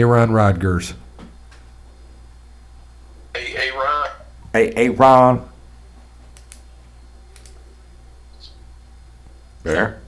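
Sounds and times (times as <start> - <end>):
speech: 0.0 - 1.0, 4.5 - 5.5, 9.6 - 10.0
steady low hum: 0.0 - 10.0
keyboard clicks: 7.3 - 7.6.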